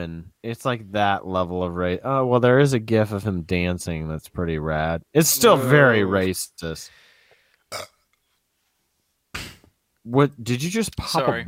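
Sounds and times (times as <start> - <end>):
speech: 0.0 - 7.0, 7.7 - 7.9, 9.4 - 11.4
person burping: 5.3 - 5.9, 7.7 - 8.1.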